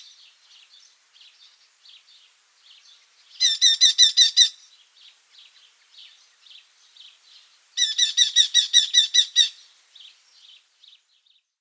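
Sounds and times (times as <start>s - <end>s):
red-footed falcon chattering: 3.4s - 4.6s, 7.8s - 9.6s.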